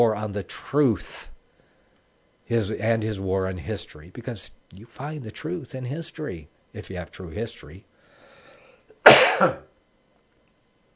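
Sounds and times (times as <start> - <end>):
speech: 0.0 - 1.3, 2.5 - 7.9, 9.0 - 9.7
loud harsh chesty cough: 9.0 - 9.8.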